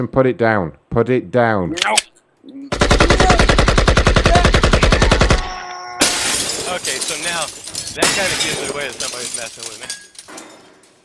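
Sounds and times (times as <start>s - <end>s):
speech: 0.0s - 2.8s, 6.8s - 10.0s
machine gun firing: 2.8s - 5.5s.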